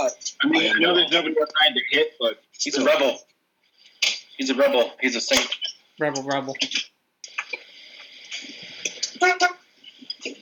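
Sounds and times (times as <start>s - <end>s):
speech: 0.0s - 3.3s, 4.4s - 6.9s, 9.2s - 9.6s
car horn honks: 9.2s - 9.7s.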